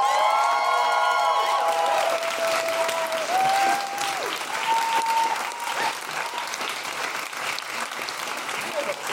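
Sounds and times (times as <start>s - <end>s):
audience whooping and shouting at a comedy show: 0.0s - 6.7s
audience clapping for a comedian at a comedy show: 0.0s - 9.1s.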